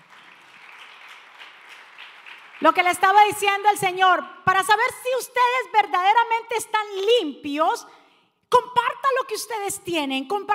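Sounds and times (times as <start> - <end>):
congregation applauding: 0.0 - 3.1
speech: 2.6 - 10.5.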